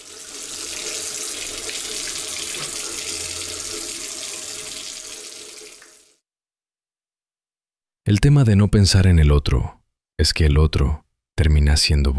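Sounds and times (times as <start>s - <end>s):
water running from a tap while brushing teeth: 0.0s - 6.2s
speech: 8.1s - 12.1s.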